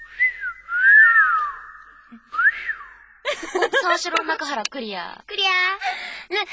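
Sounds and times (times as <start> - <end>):
person whistling a short tune: 0.0 - 3.2
laughter: 3.2 - 4.1
speech: 3.5 - 6.5.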